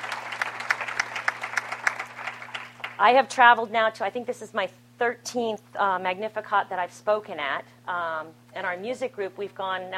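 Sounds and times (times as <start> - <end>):
rhythmic audience applause at a chapter gathering: 0.0 - 3.0
speech: 3.0 - 9.9.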